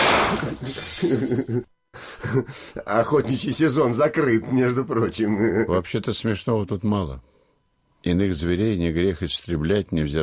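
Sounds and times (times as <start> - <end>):
clinking porcelain fragments: 0.0 - 1.4
porcelain rabbit figurines shattering from a gunshot: 0.0 - 1.4
speech: 0.4 - 7.3, 8.0 - 10.2.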